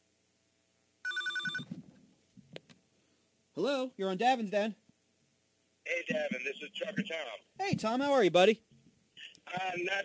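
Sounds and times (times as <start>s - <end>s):
telephone ringing in an electronic burst: 1.0s - 1.7s
speech: 3.6s - 4.8s, 6.1s - 8.7s, 9.5s - 10.0s.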